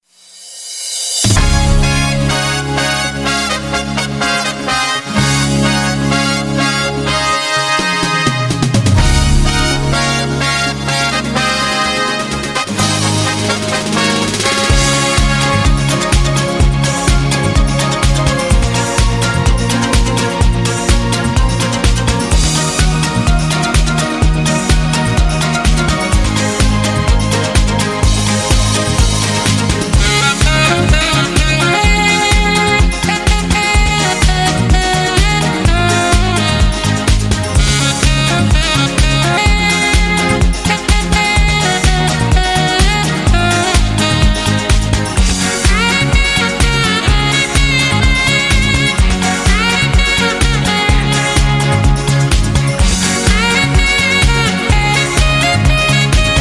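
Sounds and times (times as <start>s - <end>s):
background brass fanfare: 1.2s - 56.3s.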